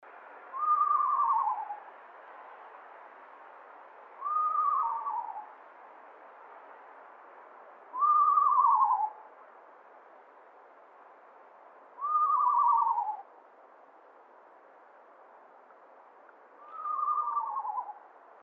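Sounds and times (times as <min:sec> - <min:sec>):
screech owl calling: 0:00.5 - 0:01.9, 0:04.2 - 0:05.6, 0:07.9 - 0:09.3, 0:12.0 - 0:13.3, 0:16.6 - 0:18.1.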